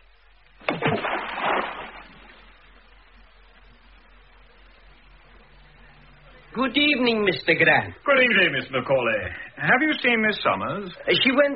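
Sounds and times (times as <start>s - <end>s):
object tossed into water splashing: 0.6s - 2.6s
speech: 6.6s - 11.5s.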